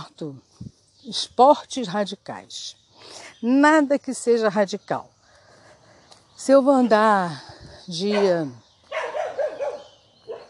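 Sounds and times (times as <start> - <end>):
speech: 0.1 - 5.1, 6.4 - 8.6
small dog barking: 8.9 - 10.4.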